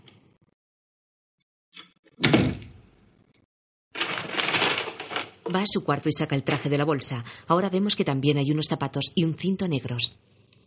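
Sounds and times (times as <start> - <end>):
heavy door thunk: 2.2 - 2.8
rough noisy scraping: 4.0 - 5.7
speech: 5.5 - 10.4.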